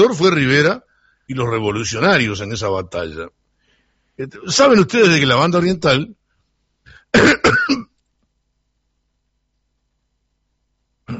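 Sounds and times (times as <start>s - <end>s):
speech: 0.0s - 3.4s, 4.2s - 6.2s, 7.1s - 7.9s
throat clearing from a speaker with a sore throat: 6.9s - 8.0s
harsh rasping coughs from a speaker with a sore throat: 7.0s - 8.0s.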